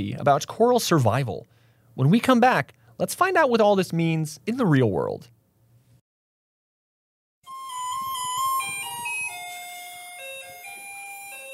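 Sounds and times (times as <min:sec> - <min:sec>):
speech: 0:00.0 - 0:05.4
electronic chime-like jingle remixing a garbage truck song: 0:07.5 - 0:11.5.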